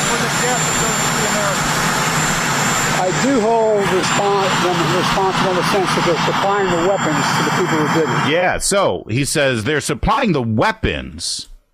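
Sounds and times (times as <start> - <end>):
jet engine roaring: 0.0 - 8.6
speech: 3.4 - 11.5.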